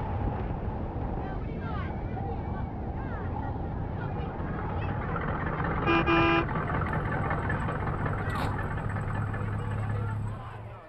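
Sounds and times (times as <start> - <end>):
steady low engine rumble: 0.0 - 10.8
street noise: 0.0 - 10.8
loud truck horn honk: 5.8 - 6.7.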